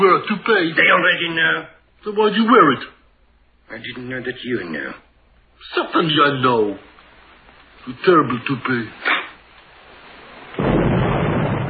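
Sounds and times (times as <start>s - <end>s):
speech: 0.0s - 3.0s, 3.7s - 5.0s, 5.6s - 6.9s, 7.8s - 9.2s
bomb explosion with sustained rumbling roar: 10.0s - 11.6s.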